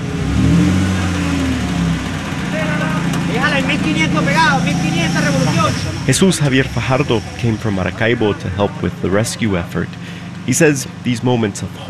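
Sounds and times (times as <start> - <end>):
truck engine revving and idling while pulling a metal gate: 0.0 - 11.8
rescuers' voices shouting and calling out: 2.4 - 11.1
speech: 3.6 - 11.8.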